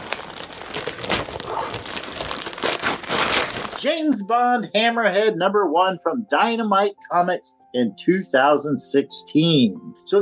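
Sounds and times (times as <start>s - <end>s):
gift wrap paper tearing: 0.0s - 3.8s
gift wrap being unwrapped from a stocking: 0.0s - 3.9s
speech: 3.8s - 10.2s.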